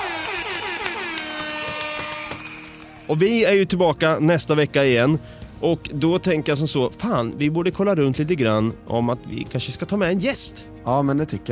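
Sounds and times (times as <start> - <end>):
blaring celebratory horn sound effect: 0.0 - 3.1
speech: 3.1 - 11.4.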